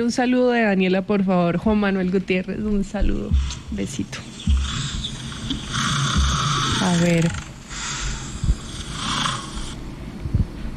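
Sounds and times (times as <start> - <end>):
speech: 0.0 - 4.4, 6.8 - 7.5
person imitating a lion's snore: 4.5 - 9.8.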